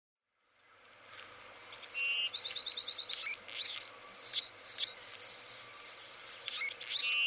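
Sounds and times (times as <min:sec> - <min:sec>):
Anna's hummingbird singing: 0:01.8 - 0:07.2.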